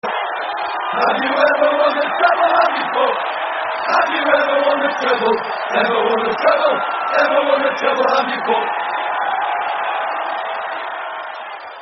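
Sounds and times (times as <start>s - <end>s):
crowd: 0.0s - 11.8s.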